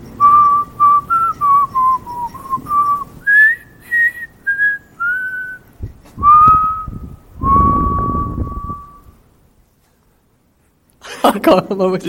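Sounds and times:
rustling: 0.0s - 11.0s
person whistling a tune in an echoey tunnel: 0.2s - 5.6s, 6.2s - 9.2s
speech: 11.4s - 12.0s.

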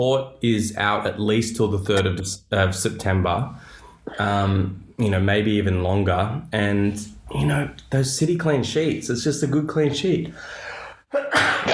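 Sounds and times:
speech: 0.0s - 11.7s
person sneezing: 11.2s - 11.7s.

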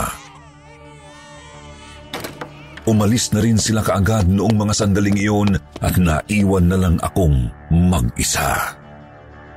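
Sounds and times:
several babies crying on a bed: 0.0s - 4.2s
speech: 2.9s - 8.8s.

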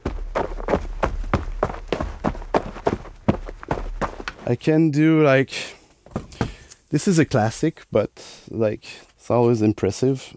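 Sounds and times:
foley footsteps made by walking on one spot to fake running: 0.0s - 4.6s, 6.0s - 6.8s
speech: 4.5s - 5.8s, 6.9s - 10.3s.

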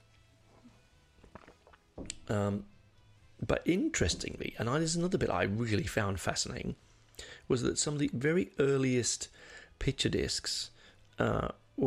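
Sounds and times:
slurping sip of tea: 1.2s - 1.8s
soft clicks of a cup: 1.3s - 2.3s
speech: 2.3s - 2.7s, 3.4s - 11.8s
satisfied voiced exhale: 7.2s - 7.5s.

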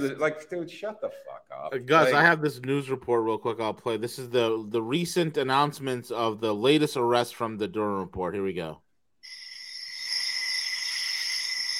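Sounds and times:
speech: 0.0s - 8.8s
crickets chirping: 9.2s - 11.7s.

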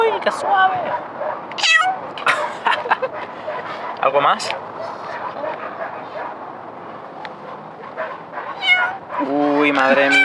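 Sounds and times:
steady outdoor noise: 0.0s - 10.2s
speech: 0.2s - 2.7s, 4.0s - 4.7s, 9.2s - 10.2s
cat meowing while greeting people: 1.5s - 2.0s, 8.5s - 9.1s, 9.9s - 10.2s
laughter: 2.2s - 3.6s, 9.4s - 10.2s
soft cat mews: 8.6s - 9.0s, 10.1s - 10.2s.

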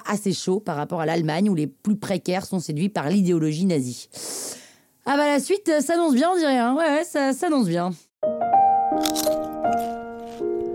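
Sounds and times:
speech: 0.1s - 8.4s
crunching something crispy: 9.0s - 10.7s.

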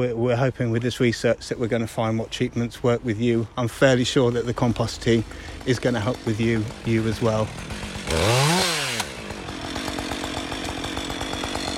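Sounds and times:
speech: 0.0s - 8.6s
chainsaw cutting a fallen yew branch: 4.0s - 11.7s.

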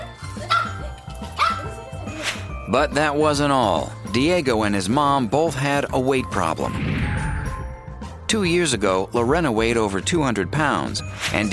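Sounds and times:
dog barking in high-pitched bursts: 0.4s - 0.8s, 1.4s - 1.8s
speech: 2.7s - 6.9s, 8.3s - 11.5s.

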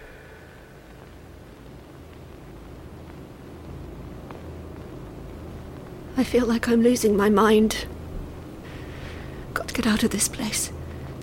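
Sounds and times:
white noise static: 0.0s - 11.2s
faint ticks: 0.9s - 6.0s
speech: 6.2s - 7.9s, 9.8s - 10.8s.

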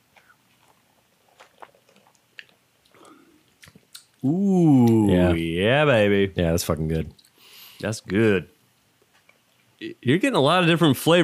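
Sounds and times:
person sipping a cocktail: 0.0s - 5.1s
soft slurps, wet clicks and swallows of a cocktail: 0.1s - 4.1s
speech: 4.2s - 7.2s, 7.8s - 8.5s, 9.8s - 11.2s.

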